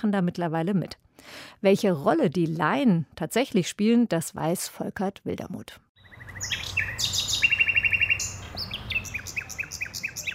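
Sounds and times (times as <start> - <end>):
speech: 0.0 - 6.7
nightingale singing: 6.0 - 10.3.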